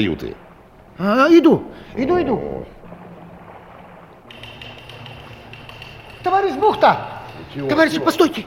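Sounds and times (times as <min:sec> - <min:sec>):
speech: 0:00.0 - 0:02.8, 0:06.2 - 0:08.4
light knocks from someone in a cabin below: 0:04.3 - 0:08.4.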